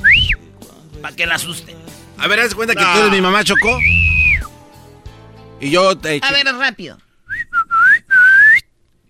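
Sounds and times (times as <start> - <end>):
loud whistle: 0.0 - 0.4, 3.5 - 4.5, 7.3 - 8.6
speech: 1.0 - 4.0, 5.6 - 7.0.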